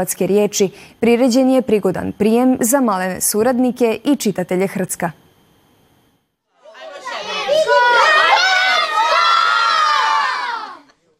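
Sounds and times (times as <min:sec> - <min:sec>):
speech: 0:00.0 - 0:05.2
children shouting and cheering at a festive reception for a children's magazine anniversary: 0:06.6 - 0:10.9.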